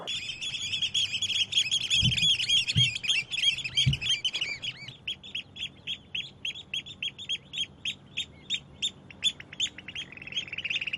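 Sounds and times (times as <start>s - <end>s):
breeding-season birds calling warningly at rivals: 0.0s - 10.9s
low thumps: 1.8s - 4.3s.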